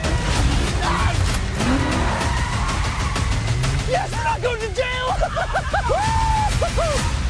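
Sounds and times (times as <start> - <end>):
racing car engines revving hard: 0.1 - 4.8
tires squealing and skidding: 0.3 - 4.3
laughter: 4.9 - 7.1.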